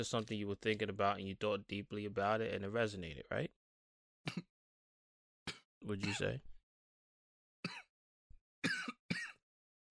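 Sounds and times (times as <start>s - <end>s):
speech: 0.0s - 3.6s, 4.2s - 4.5s, 5.8s - 6.5s, 7.6s - 7.8s
harsh coughs: 5.5s - 6.4s, 7.6s - 7.9s, 8.6s - 9.4s.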